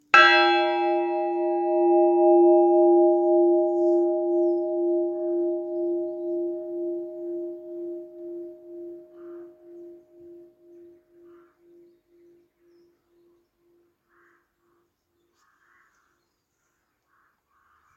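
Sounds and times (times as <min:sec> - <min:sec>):
treble church bell ringing: 0:00.1 - 0:09.9.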